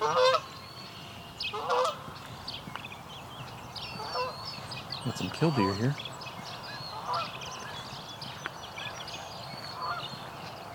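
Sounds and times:
Canada goose honking at wetlands during dawn chorus: 0.0s - 0.5s, 1.5s - 2.0s, 4.0s - 4.4s, 6.9s - 7.3s, 9.8s - 10.1s
chirping songbirds including house sparrows: 0.0s - 10.7s
steady low ambient outdoor noise: 0.0s - 10.7s
speech: 5.0s - 6.1s.

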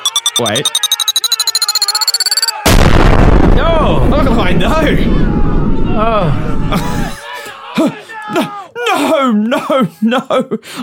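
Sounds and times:
high pulsing electronic beeps in a video game: 0.0s - 2.6s
speech: 0.4s - 0.9s, 3.6s - 7.2s, 7.8s - 10.8s
bomb blast in a video game: 2.7s - 6.7s.

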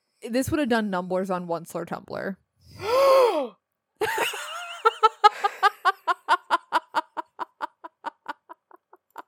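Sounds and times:
speech: 0.2s - 4.2s
loud sharp gasp: 2.7s - 3.6s
rhythmic breathy laughter: 4.1s - 9.2s.

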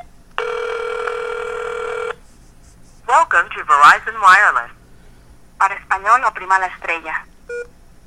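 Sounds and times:
mobile phone call ring tone through speakerphone: 0.4s - 2.2s
speech: 3.3s - 4.8s, 5.6s - 7.3s.

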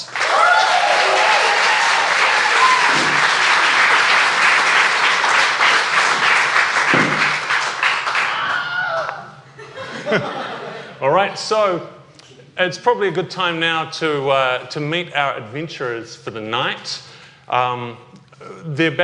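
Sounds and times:
cheers: 0.0s - 5.8s, 7.8s - 9.4s
large crowd applauding: 0.0s - 9.3s
laughter: 9.4s - 11.0s
speech: 11.2s - 12.0s, 12.6s - 19.0s.

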